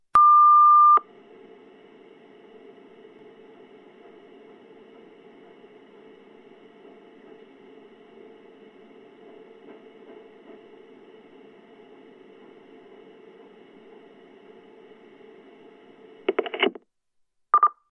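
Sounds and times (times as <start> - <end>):
answering machine signals: 0.2 - 1.1.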